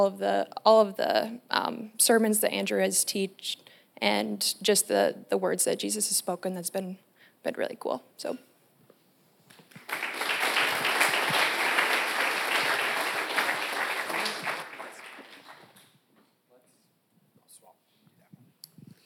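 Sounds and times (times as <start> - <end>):
speech: 0.0 - 8.5
audience applause at a church gathering: 9.7 - 15.9.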